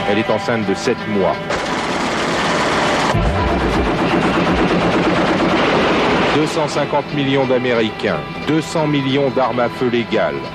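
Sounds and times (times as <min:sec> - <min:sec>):
speech: 0:00.1 - 0:01.7, 0:06.4 - 0:10.5
tank-mounted heavy gun firing from a small truck: 0:01.5 - 0:06.8
dense continuous outdoor noise and rattling: 0:01.5 - 0:07.5.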